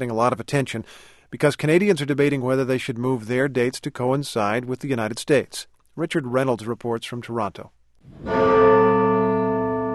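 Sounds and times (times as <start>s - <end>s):
speech: 0.0s - 8.5s
clock tower bells tolling the hour: 8.2s - 9.9s.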